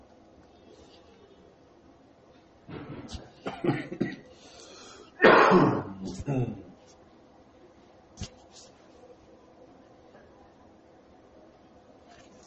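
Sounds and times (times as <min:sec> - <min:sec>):
person coughing from a throat tickle: 0:03.1 - 0:04.4, 0:05.2 - 0:06.6
soft vocal murmurs: 0:05.9 - 0:07.0.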